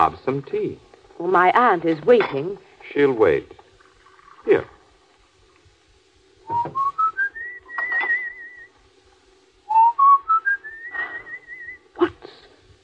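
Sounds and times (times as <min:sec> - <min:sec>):
speech: 0:00.0 - 0:03.6, 0:04.4 - 0:04.8, 0:06.5 - 0:06.9
person whistling a tune: 0:06.5 - 0:08.7, 0:09.7 - 0:11.8.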